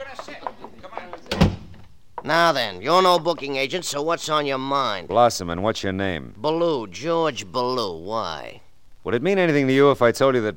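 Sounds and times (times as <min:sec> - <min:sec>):
door closing with a solid thud: 0:01.1 - 0:01.9
speech: 0:02.2 - 0:10.5.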